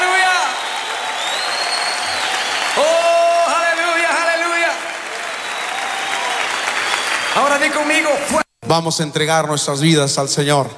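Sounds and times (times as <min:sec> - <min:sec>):
sustained applause from a large crowd: 0:00.0 - 0:08.4
speech: 0:07.6 - 0:10.7.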